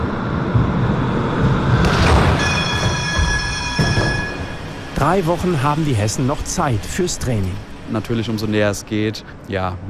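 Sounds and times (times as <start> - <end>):
tram rumbling along the rails: 0.0 - 9.8
high metallic tram wheel squeals: 2.0 - 5.0
speech: 5.0 - 9.8.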